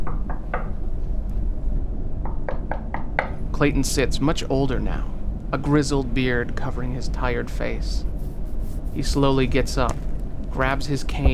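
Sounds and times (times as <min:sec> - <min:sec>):
firm knocking on a door: 0:00.0 - 0:00.8, 0:02.2 - 0:03.4
steady low rumble: 0:00.8 - 0:02.5, 0:03.3 - 0:11.3
speech: 0:03.6 - 0:08.1, 0:09.0 - 0:11.3.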